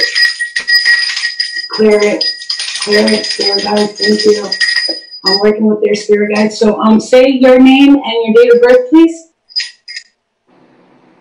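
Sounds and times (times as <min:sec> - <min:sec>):
small bell ringing: 0:00.0 - 0:06.8, 0:09.5 - 0:10.2
speech: 0:01.8 - 0:04.6, 0:05.3 - 0:09.2.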